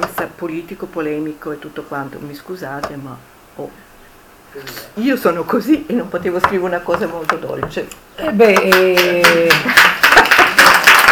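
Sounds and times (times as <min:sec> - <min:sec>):
speech: 0:00.4 - 0:03.9, 0:04.5 - 0:09.9
audience applause at a literary reading: 0:08.7 - 0:11.1.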